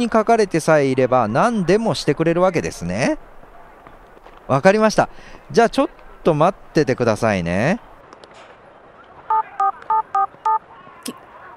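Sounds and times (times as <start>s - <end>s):
speech: 0.0s - 3.3s, 4.5s - 7.9s
telephone electronic keypad dual-pitched dialing tones: 9.3s - 10.6s.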